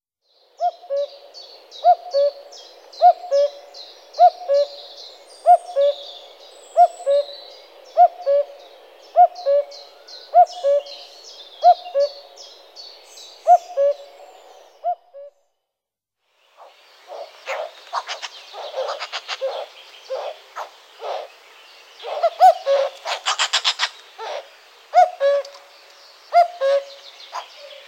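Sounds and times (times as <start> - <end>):
common cuckoo: 0.6 - 4.8, 5.4 - 6.1, 6.8 - 7.4, 8.0 - 11.0, 11.6 - 12.3, 13.4 - 15.4, 16.6 - 21.3, 22.0 - 25.7, 26.3 - 27.8.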